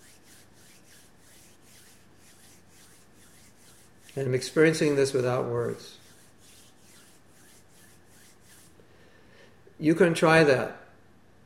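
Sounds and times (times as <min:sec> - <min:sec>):
hands rubbing together: 0:00.0 - 0:08.8
speech: 0:04.2 - 0:06.0, 0:09.8 - 0:10.8.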